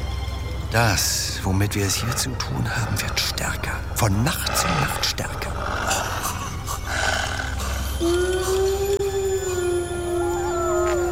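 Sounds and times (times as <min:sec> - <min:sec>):
low rumbling background: 0:00.0 - 0:11.0
speech: 0:00.7 - 0:05.8
village dogs howling: 0:04.3 - 0:11.0.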